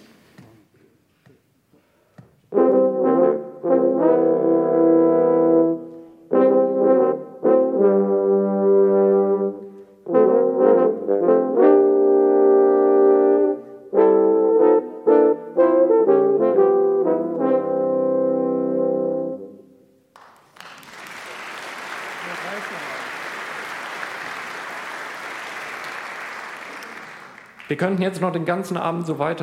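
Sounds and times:
brass section playing muted sustained chords with bucket mutes: 2.5s - 19.6s
speech: 27.8s - 29.4s.

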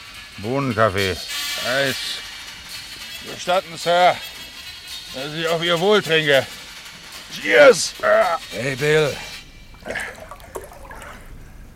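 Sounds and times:
speech: 0.4s - 2.3s, 3.2s - 4.3s, 5.1s - 6.6s, 7.3s - 10.2s
soft watery background: 0.8s - 11.7s
splashing as someone scoops seawater: 8.4s - 11.7s.

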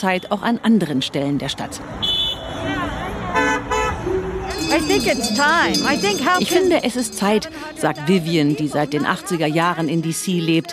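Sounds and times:
speech: 0.0s - 2.8s, 4.7s - 10.7s
car horns honking in busy morning street traffic: 2.0s - 9.3s
murmur of voices of demonstrators: 2.6s - 10.7s.

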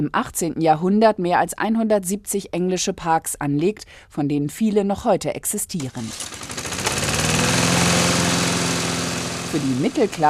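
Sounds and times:
speech: 0.0s - 6.4s, 9.5s - 10.2s
small lawn mower engine running: 5.8s - 10.2s.

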